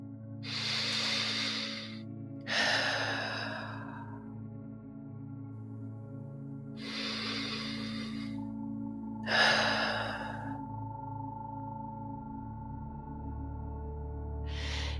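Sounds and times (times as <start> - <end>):
soft steady low drone: 0.0 - 14.9
deep breaths in and out during a sleep meditation: 0.4 - 4.5, 6.6 - 12.1, 14.5 - 14.9.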